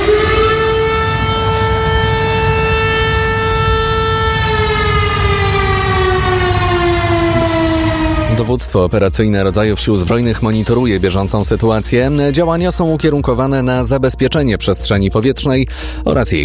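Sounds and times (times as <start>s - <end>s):
civil defense air raid siren wailing in Lublin Poland during an air attack alert: 0.0s - 8.8s
speech: 8.5s - 16.4s.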